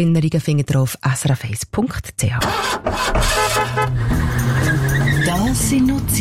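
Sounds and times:
speech: 0.0s - 6.1s
old car engine chugging: 2.4s - 6.1s
brassy old car horn honking: 2.8s - 4.9s.

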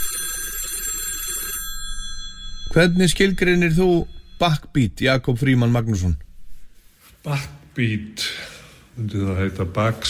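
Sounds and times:
telephone ringing for an incoming call: 0.0s - 5.9s
speech: 2.8s - 6.2s, 7.2s - 8.4s, 9.0s - 10.0s.

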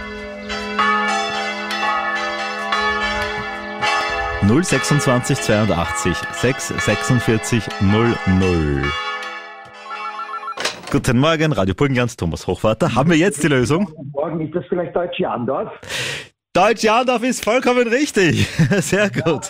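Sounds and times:
church bells ringing: 0.0s - 10.6s
speech: 4.4s - 9.1s, 10.9s - 19.4s
laughter: 18.2s - 19.4s.

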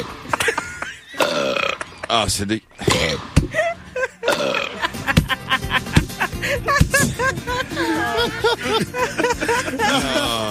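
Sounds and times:
laughter: 0.0s - 2.4s, 3.5s - 10.5s
short croaky burps: 1.1s - 2.0s, 2.8s - 3.3s, 4.3s - 4.9s
speech: 2.1s - 3.3s, 7.7s - 10.5s.

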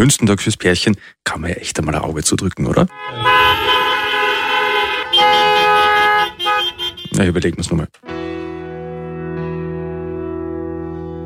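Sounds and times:
speech: 0.0s - 3.7s, 7.2s - 8.4s
car horns honking: 2.9s - 7.3s.

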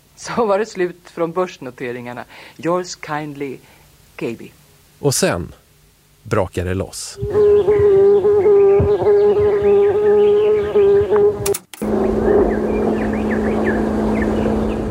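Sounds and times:
speech: 0.2s - 5.6s, 6.2s - 8.1s
loud steady insect buzzing and humming: 7.2s - 14.9s
lower monotonous hum: 7.2s - 14.9s.

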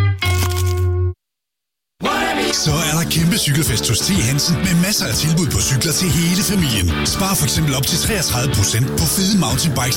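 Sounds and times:
crunching bites into crispy fried chicken burger: 0.2s - 1.0s
speech: 2.7s - 9.9s.

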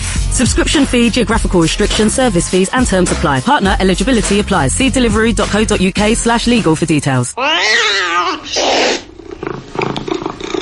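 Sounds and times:
speech: 0.4s - 9.0s
cat meowing: 7.4s - 9.1s
cat hissing: 7.4s - 10.6s.

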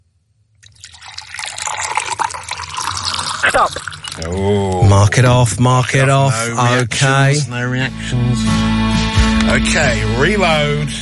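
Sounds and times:
liquid pouring into a container: 0.6s - 6.6s
speech: 3.4s - 11.0s.

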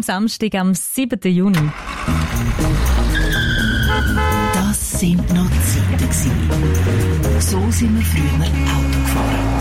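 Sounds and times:
speech: 0.0s - 3.1s, 4.0s - 9.5s
old car engine rumbling: 1.6s - 9.5s
high whining squeal: 3.1s - 4.2s.

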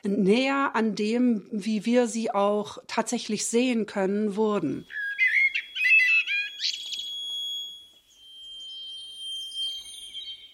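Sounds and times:
speech: 0.0s - 5.0s
blackbird singing: 4.8s - 10.5s.

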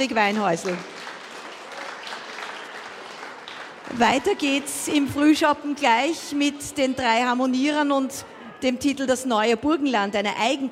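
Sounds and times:
speech: 0.0s - 1.0s, 3.9s - 10.7s
crowd applause: 0.5s - 5.4s.

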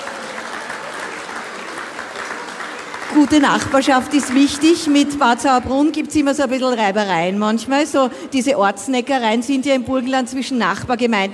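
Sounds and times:
audience applause: 0.0s - 6.1s
speech: 3.1s - 11.3s.

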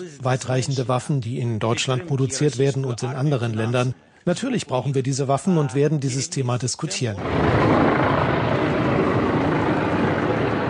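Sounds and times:
speech: 0.0s - 8.4s
helicopter rotors droning overhead: 7.2s - 10.6s.

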